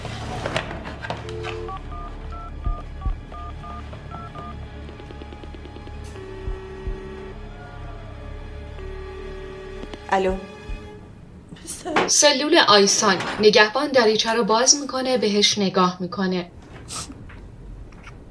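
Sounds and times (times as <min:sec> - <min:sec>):
low hum: 0:01.1 - 0:11.9
desk telephone dialing beeps: 0:01.2 - 0:05.5
speech: 0:10.1 - 0:10.5, 0:11.8 - 0:17.0.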